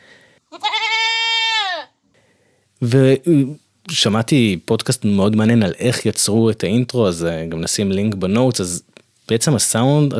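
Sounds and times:
goat bleating: 0.5s - 2.0s
speech: 2.8s - 10.1s.

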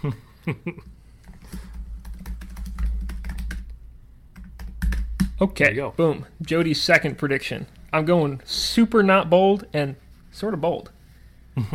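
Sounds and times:
speech: 0.0s - 1.6s, 5.4s - 11.0s, 11.6s - 11.7s
typing on a computer keyboard: 1.2s - 3.7s, 4.4s - 5.4s.

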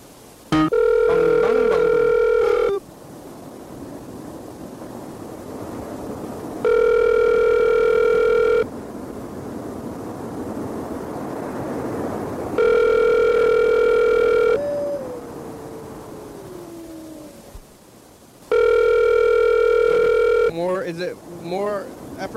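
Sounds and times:
faint hiss: 0.0s - 22.3s
outgoing phone call ringback tones: 0.5s - 2.8s, 6.6s - 8.7s, 12.6s - 15.1s, 18.5s - 20.6s
brief burst of voice: 14.6s - 15.4s.

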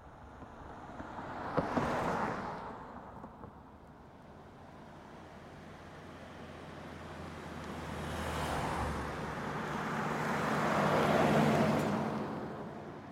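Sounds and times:
morning city traffic roar of passing cars: 0.0s - 13.1s.

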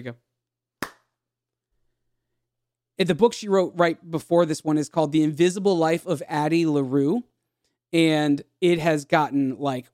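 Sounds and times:
speech: 0.0s - 0.3s, 3.0s - 7.3s, 7.9s - 9.9s
single sharp hand clap: 0.8s - 1.1s.

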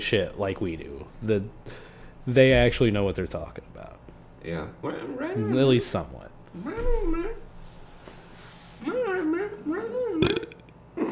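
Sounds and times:
speech: 0.0s - 7.4s, 8.8s - 10.3s
loud drawn-out belch into microphone: 10.2s - 11.1s.

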